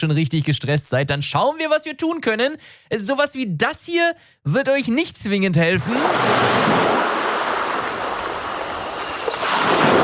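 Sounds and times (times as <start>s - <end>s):
speech: 0.0s - 7.2s
ocean surf washing in: 5.9s - 10.0s.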